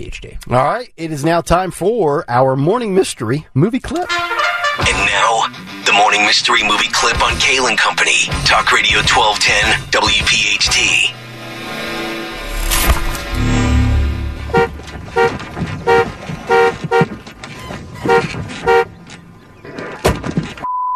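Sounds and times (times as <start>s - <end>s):
speech: 0.0s - 11.2s
car horn honking: 4.1s - 5.1s, 13.3s - 19.2s
rumbling engine: 5.6s - 20.6s.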